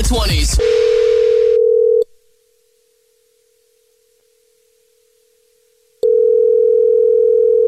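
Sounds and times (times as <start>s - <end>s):
speech: 0.1s - 1.0s
telephone dial tone while placing a call: 0.7s - 2.1s, 6.0s - 7.6s.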